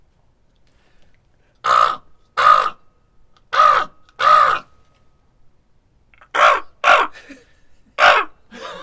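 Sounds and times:
human voices imitating raven calls: 0:01.6 - 0:02.8, 0:03.5 - 0:04.7, 0:06.2 - 0:07.3, 0:08.0 - 0:08.4.

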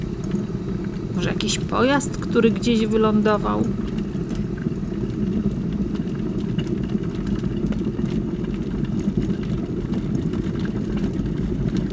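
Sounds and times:
water in a kettle coming to a boil with dense bubbling: 0:00.0 - 0:11.9
speech: 0:01.2 - 0:03.9.

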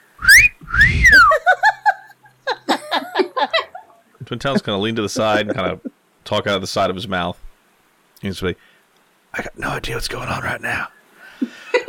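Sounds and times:
loud two-part wolf whistle aimed at someone: 0:00.2 - 0:01.3
bursts of laughter: 0:01.2 - 0:05.9, 0:11.4 - 0:11.8
speech: 0:04.3 - 0:07.4, 0:08.2 - 0:08.7, 0:09.4 - 0:11.6.

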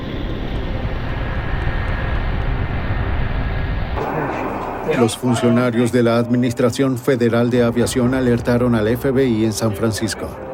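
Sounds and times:
airplane in flight roaring: 0:00.0 - 0:06.6
speech: 0:04.3 - 0:10.5.

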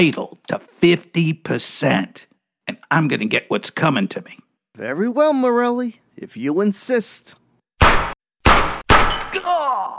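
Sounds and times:
speech: 0:00.0 - 0:02.3, 0:02.9 - 0:08.1, 0:09.4 - 0:09.9
gunshots in a crime drama: 0:07.8 - 0:09.4.

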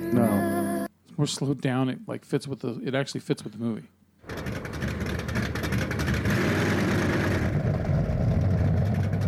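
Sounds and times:
speech: 0:00.1 - 0:00.4, 0:01.2 - 0:04.0
car engines rumbling: 0:04.3 - 0:09.2.

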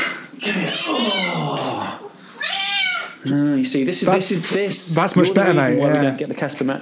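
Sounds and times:
female cat howling into a microphone: 0:00.4 - 0:03.2
speech: 0:03.2 - 0:06.8.

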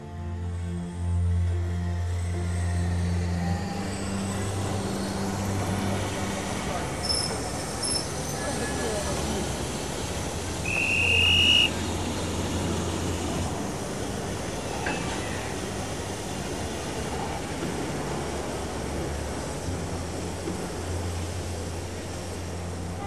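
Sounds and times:
train rolling with heavy rumble and low hum: 0:00.3 - 0:23.0
high-pitched train wheel or brake squeal: 0:07.0 - 0:08.7, 0:10.7 - 0:11.7.

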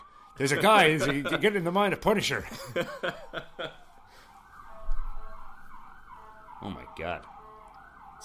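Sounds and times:
emergency vehicle siren passing by outside: 0:00.0 - 0:08.2
speech: 0:00.4 - 0:03.8, 0:06.6 - 0:07.4
person chuckling: 0:02.4 - 0:03.9.

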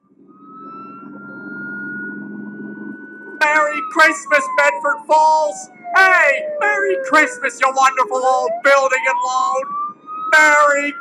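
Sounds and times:
police car siren wailing: 0:00.1 - 0:10.9
speech: 0:03.5 - 0:10.9.

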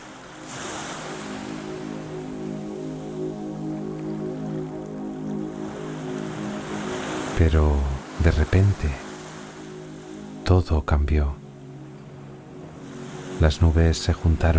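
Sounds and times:
calm ocean waves lapping around a fishing boat: 0:00.0 - 0:10.5, 0:11.4 - 0:14.5
speech: 0:07.4 - 0:09.0, 0:10.5 - 0:11.4, 0:13.4 - 0:14.5.

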